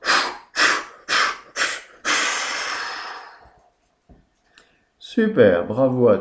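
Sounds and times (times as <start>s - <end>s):
long forceful exhale in a guided breathing exercise: 0.0s - 3.6s
person doing a guided breathing exercise sharp breaths in: 0.0s - 3.6s
speech: 5.2s - 6.1s.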